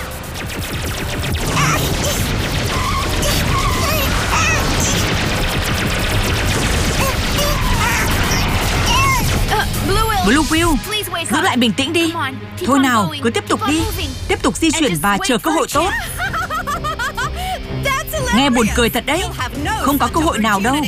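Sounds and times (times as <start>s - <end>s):
cartoon laser zapping chirps: 0.0s - 10.8s
cartoon powerful laser being fired: 0.0s - 11.0s
speech: 10.6s - 16.3s, 18.3s - 20.8s
laughter: 15.5s - 18.7s, 19.7s - 20.5s.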